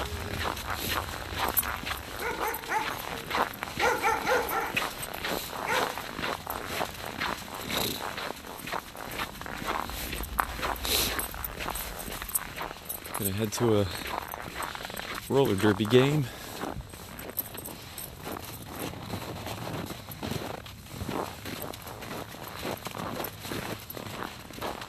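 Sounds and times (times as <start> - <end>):
dog barking and whimpering: 0.0 - 6.3
footsteps: 0.0 - 24.8
outdoor noise: 0.0 - 24.8
speech: 1.0 - 1.5, 13.3 - 14.1, 15.3 - 16.4.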